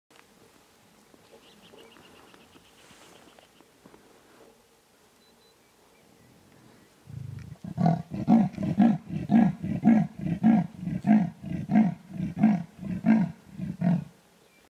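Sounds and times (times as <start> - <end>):
clouded leopard grunting: 7.0 - 14.1.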